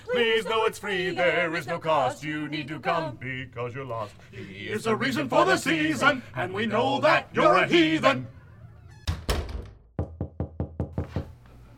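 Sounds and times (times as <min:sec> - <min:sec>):
speech: 0:00.2 - 0:08.4
knocking on a neighbor's garage door: 0:09.1 - 0:11.3.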